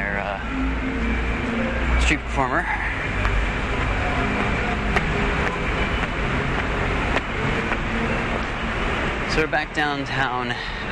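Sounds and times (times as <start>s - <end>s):
constant whooshing hum of a moving light rail train: 0.0s - 9.3s
speech: 2.1s - 2.8s, 9.4s - 10.9s
rumble inside a moving SkyTrain light rail train: 2.6s - 9.3s.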